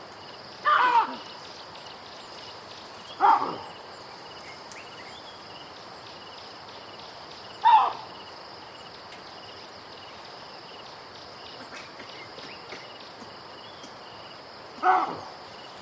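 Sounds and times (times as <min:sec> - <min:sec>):
insects humming: 0:00.0 - 0:15.7
baboon barking: 0:03.2 - 0:03.6, 0:07.6 - 0:08.0, 0:14.8 - 0:15.3.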